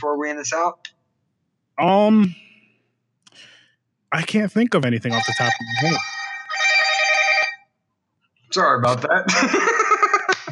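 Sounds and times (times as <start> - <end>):
speech: 0.0 - 1.0, 1.8 - 2.5, 4.1 - 6.1, 8.5 - 9.9
phone ringtone with bright electronic pulses: 5.1 - 7.7
laughter: 8.8 - 10.5.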